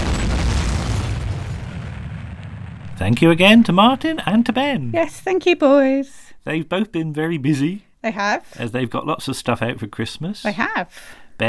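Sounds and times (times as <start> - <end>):
deep rumbling explosion sound effect: 0.0 - 4.8
speech: 3.0 - 11.4.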